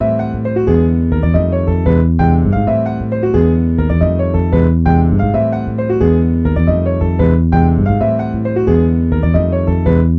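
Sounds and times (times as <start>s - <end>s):
minor harmony: 0.0s - 10.1s.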